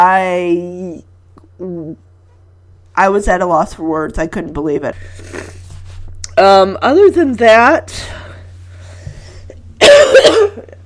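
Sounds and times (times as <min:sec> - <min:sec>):
speech: 0:00.0 - 0:02.1, 0:03.0 - 0:05.6, 0:06.4 - 0:08.2
person coughing: 0:09.8 - 0:10.8.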